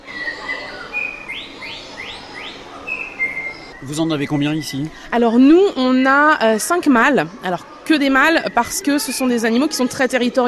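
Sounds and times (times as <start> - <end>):
male white-rumped shama singing: 0.0 - 4.1
speech: 3.8 - 10.4.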